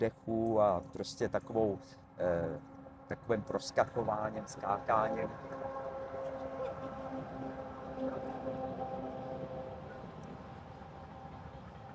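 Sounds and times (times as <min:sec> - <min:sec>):
speech: 0:00.0 - 0:05.8
faint whining tones: 0:00.0 - 0:11.9
long train rumbling past: 0:03.8 - 0:11.9.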